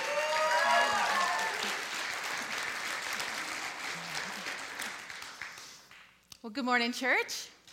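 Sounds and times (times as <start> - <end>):
cheers and whoops: 0.0 - 1.8
large church audience applauding to welcome a speaker: 0.0 - 6.2
speech: 6.5 - 7.6.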